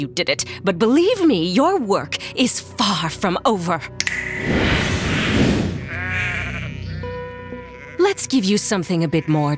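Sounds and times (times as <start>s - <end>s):
speech: 0.0s - 4.6s, 8.1s - 9.5s
herd of sheep bleating: 5.8s - 8.3s, 8.9s - 9.5s.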